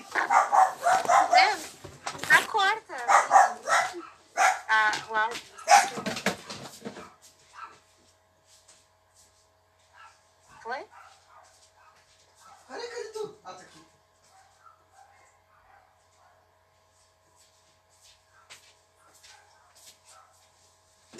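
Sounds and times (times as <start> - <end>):
dog barking sharply: 0.0 - 1.7, 3.0 - 4.8, 5.5 - 6.4, 7.0 - 7.8, 9.9 - 12.8, 14.2 - 16.5, 18.3 - 20.4.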